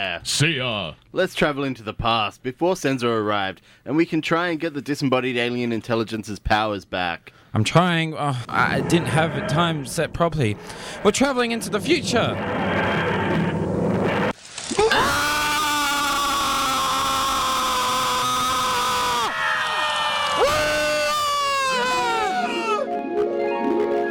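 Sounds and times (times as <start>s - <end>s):
speech: 0.0s - 13.4s
crowd screaming: 14.7s - 24.0s.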